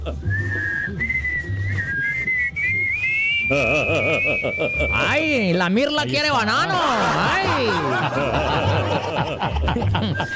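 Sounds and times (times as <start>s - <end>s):
laughter: 0.0s - 0.5s, 3.4s - 5.3s, 6.6s - 10.3s
speech: 0.0s - 2.1s, 3.0s - 10.3s
person whistling: 0.2s - 5.1s, 10.0s - 10.3s.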